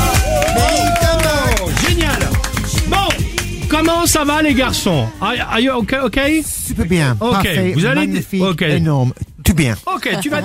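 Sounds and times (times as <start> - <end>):
whoops and shouted cheers: 0.0 - 1.8
crowd applause for guests on a radio broadcast: 0.0 - 3.5
speech: 4.0 - 10.4.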